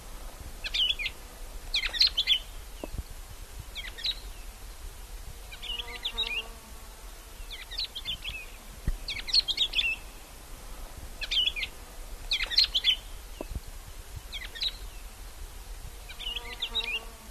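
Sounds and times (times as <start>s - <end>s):
faint background noise: 0.0s - 17.2s
bird chirping: 0.6s - 3.0s, 5.5s - 6.6s, 7.4s - 10.2s, 11.2s - 11.7s, 12.3s - 13.6s, 16.1s - 17.2s.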